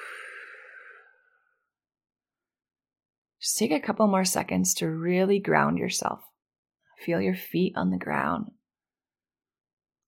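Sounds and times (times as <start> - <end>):
person exhaling deeply through mouth in a guided grounding breathing exercise: 0.0 - 1.3
speech: 3.4 - 6.3, 7.0 - 8.6.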